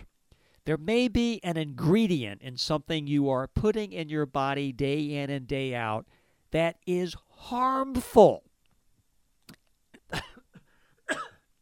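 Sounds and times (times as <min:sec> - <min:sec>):
speech: 0:00.7 - 0:08.4, 0:10.1 - 0:10.3
person coughing: 0:10.0 - 0:11.5.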